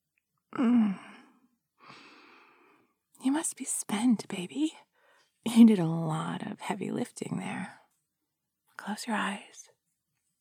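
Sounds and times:
soft voiced sigh: 0.5 - 2.8
speech: 0.6 - 1.1, 3.2 - 7.8, 8.8 - 9.7
relaxed breathing: 0.6 - 3.0.

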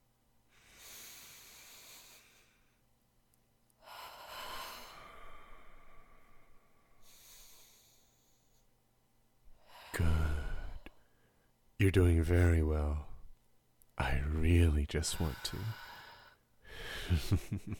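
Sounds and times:
person taking deep breaths: 0.5 - 2.8, 3.8 - 8.7, 9.6 - 11.5, 15.1 - 17.4
speech: 11.8 - 13.1, 14.1 - 15.8, 17.1 - 17.7.

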